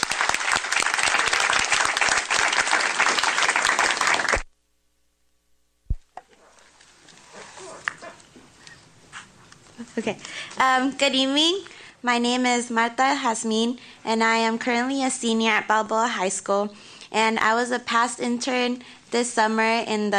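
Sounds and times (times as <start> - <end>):
crowd applauding: 0.0 - 4.5
speech: 10.0 - 20.1.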